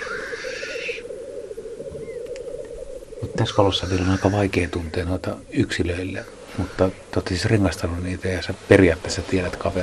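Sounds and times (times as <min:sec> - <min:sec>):
bird hissing call: 0:00.0 - 0:05.0, 0:06.2 - 0:07.1
birds displaying at a lek with low bubbling coo: 0:00.0 - 0:08.7
speech: 0:03.4 - 0:09.8.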